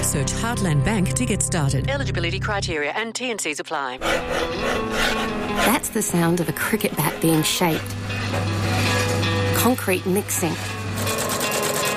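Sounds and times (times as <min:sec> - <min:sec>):
speech: 0:00.1 - 0:08.6, 0:09.6 - 0:10.8
machine stitching socks in Australia: 0:10.6 - 0:11.9.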